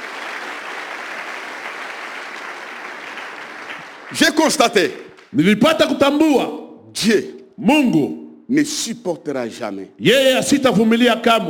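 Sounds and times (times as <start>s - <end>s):
congregation applause at a worship service: 0.0s - 5.3s
speech: 4.1s - 11.4s.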